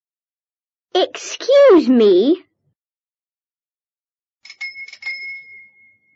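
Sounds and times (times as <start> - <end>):
speech: 1.0 - 2.5
bell on a red bicycle ringing: 4.4 - 6.1.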